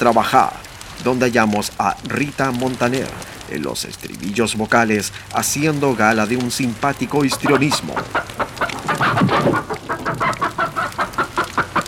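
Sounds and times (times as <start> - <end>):
speech: 0.0 - 8.6
chicken clucking and squawking: 7.1 - 11.8.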